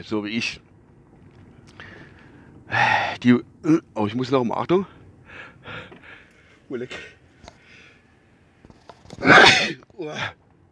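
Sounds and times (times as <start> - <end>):
speech: 0.0 - 0.7, 2.7 - 5.0, 6.7 - 7.2, 9.2 - 10.4
loud sneeze: 9.2 - 10.3.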